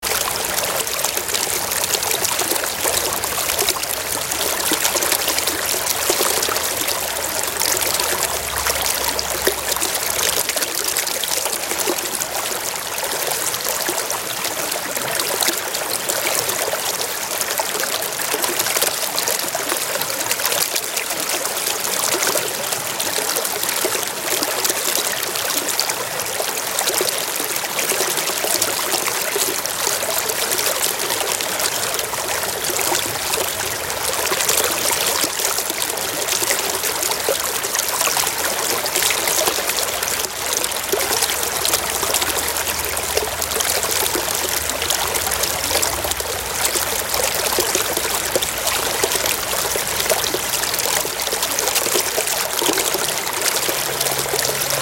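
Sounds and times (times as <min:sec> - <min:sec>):
running stream water at a pond: 0:00.0 - 0:54.8.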